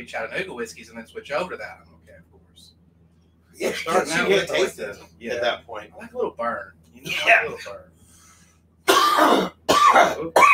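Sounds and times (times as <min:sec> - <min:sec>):
speech: 0:00.0 - 0:02.8, 0:03.6 - 0:07.9, 0:09.2 - 0:10.5
person coughing harshly: 0:08.9 - 0:10.5.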